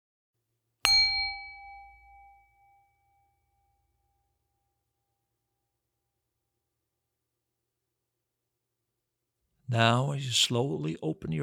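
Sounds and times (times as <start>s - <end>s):
meditation bell struck and ringing: 0.9s - 5.3s
speech: 9.7s - 11.4s.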